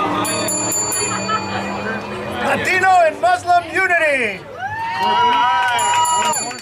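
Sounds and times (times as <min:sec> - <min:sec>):
murmur of voices at taco dinner: 0:00.0 - 0:06.6
small bell struck by chef of mobile Mexican food kitchen: 0:00.2 - 0:02.3, 0:05.7 - 0:06.6
diners cheering and shouting: 0:04.2 - 0:06.6.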